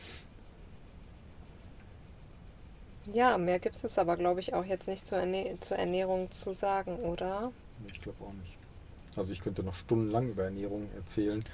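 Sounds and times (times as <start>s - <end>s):
cicadas chirping outdoors: 0.0s - 11.5s
speech: 3.1s - 8.6s, 9.2s - 11.5s.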